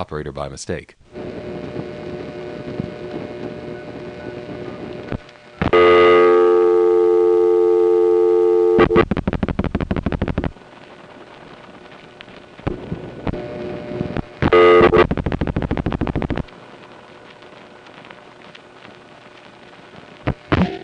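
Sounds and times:
speech: 0:00.0 - 0:01.4
low telephone line hum on crossbar exchange: 0:01.0 - 0:20.8
telephone line click on crossbar exchange: 0:01.6 - 0:09.1
telephone dial tone on Crossbar 5 exchange: 0:03.7 - 0:09.0.

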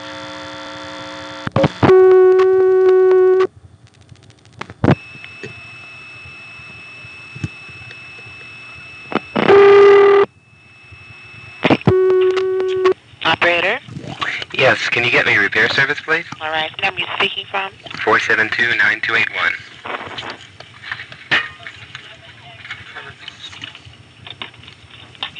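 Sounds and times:
steady quieter hum of telephone dial tone: 0:00.0 - 0:13.0
speech: 0:14.6 - 0:19.7.

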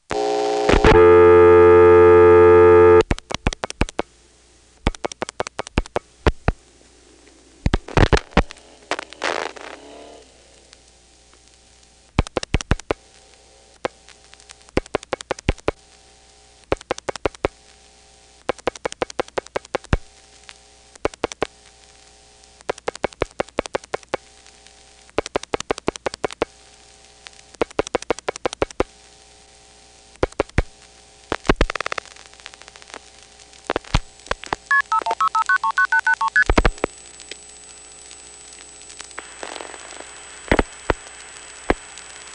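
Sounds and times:
faint steady hum: 0:00.0 - 0:42.3
telephone dial tone: 0:00.2 - 0:03.0, 0:34.7 - 0:36.4.

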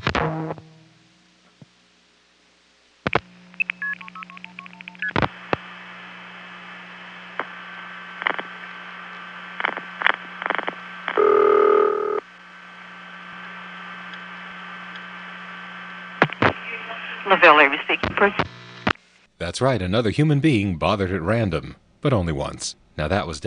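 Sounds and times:
steady electrical hum: 0:00.0 - 0:23.4
loud telephone ring tone: 0:11.2 - 0:12.2
speech: 0:17.3 - 0:18.4, 0:19.4 - 0:23.4.

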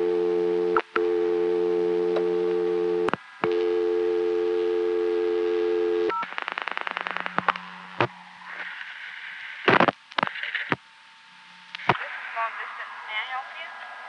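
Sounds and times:
payphone telephone dial tone from 1975 after a 20-cent deposit: 0:00.0 - 0:06.2
irregular noisy payphone line sounds: 0:00.0 - 0:14.0.

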